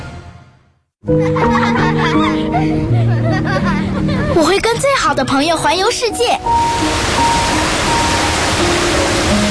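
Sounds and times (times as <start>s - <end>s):
laughter: 1.2s - 4.5s
speech: 4.4s - 7.7s
distant waterfall rushing: 6.5s - 9.5s.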